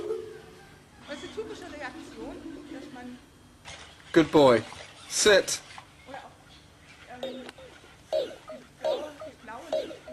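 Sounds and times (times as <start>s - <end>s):
low hum: 0.0s - 10.1s
speech: 1.5s - 5.7s
synthetic bark-like yips from a robot dog pet simulation: 8.1s - 10.1s.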